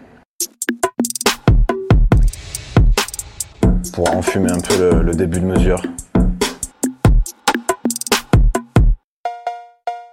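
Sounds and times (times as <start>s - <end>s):
punchy drum beat with deep kicks and snappy percussion: 0.4s - 9.0s
speech: 3.9s - 6.0s
bright ringing West Coast-style cowbell hits: 9.3s - 10.1s.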